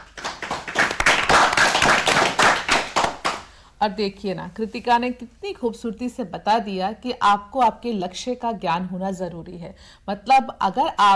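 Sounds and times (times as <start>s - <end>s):
school children clapping for a student's speech: 0.0s - 3.5s
speech: 3.8s - 11.1s.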